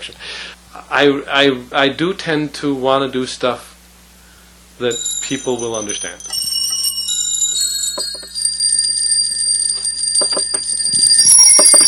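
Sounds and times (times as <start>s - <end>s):
speech: 0.0s - 3.7s, 4.8s - 6.4s
slightly out-of-tune copper chimes played on a keyboard instrument: 4.9s - 11.8s.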